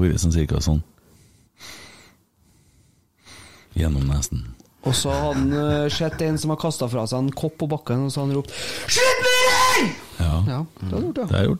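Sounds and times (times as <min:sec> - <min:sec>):
speech: 0:00.0 - 0:00.9, 0:01.6 - 0:01.8, 0:03.8 - 0:11.5
person imitating heavy breathing of an exhausted marathon runner: 0:01.0 - 0:03.7
laughter: 0:04.8 - 0:06.7.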